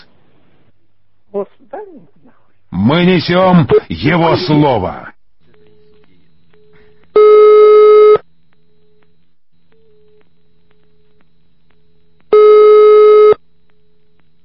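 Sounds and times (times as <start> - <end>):
speech: 1.4 - 5.1
telephone line hiss: 2.9 - 14.4
telephone busy signal while calling police: 6.6 - 8.2, 12.3 - 13.4.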